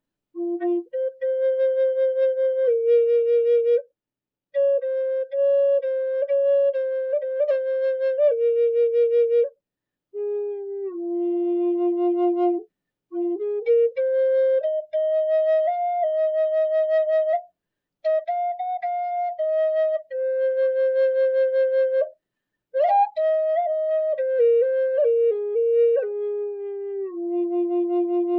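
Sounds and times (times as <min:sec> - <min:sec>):
large F Eastern cedar flutes: 0:00.0 - 0:03.9, 0:04.5 - 0:28.3.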